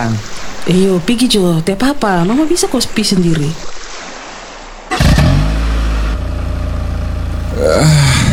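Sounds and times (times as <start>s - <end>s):
speech: 0.0s - 3.8s, 7.6s - 8.2s
motorcycle engine starting and revving in Palu: 4.9s - 8.3s.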